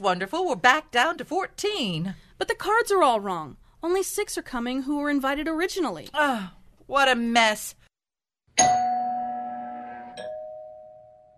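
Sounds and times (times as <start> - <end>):
speech: 0.0 - 7.8, 8.6 - 8.8
two-tone ding-dong front doorbell chime: 8.6 - 11.3.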